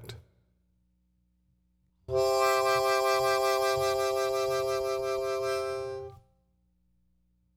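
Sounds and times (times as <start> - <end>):
harmonica with vibrato: 2.1 - 6.2.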